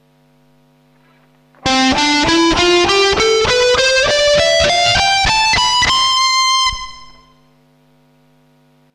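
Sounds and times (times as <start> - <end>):
guitar with reverb effects: 1.6 - 7.6.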